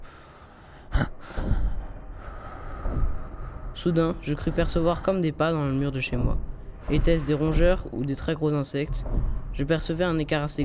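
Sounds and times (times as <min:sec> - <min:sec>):
frightened breathing of a person on guard in a kitchen: 0:00.0 - 0:08.0
speech: 0:03.8 - 0:10.6.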